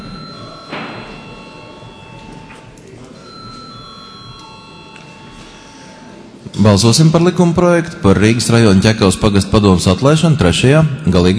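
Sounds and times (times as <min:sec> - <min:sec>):
electric voting call bell ringing in a parliament: 0:00.0 - 0:06.3
soft murmur and faint voices: 0:00.0 - 0:11.3
speech: 0:06.5 - 0:11.3.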